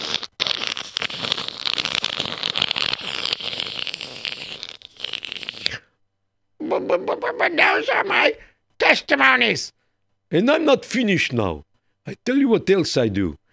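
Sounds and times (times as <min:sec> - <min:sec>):
burning paper crackling and crinkling: 0:00.0 - 0:05.8
speech: 0:06.8 - 0:13.4.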